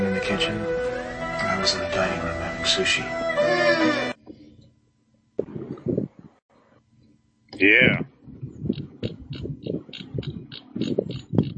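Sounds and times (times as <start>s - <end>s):
speech: 0.3s - 0.9s, 1.6s - 4.0s, 7.6s - 8.1s
computer mouse scroll wheel ratcheting clicks: 8.7s - 11.5s.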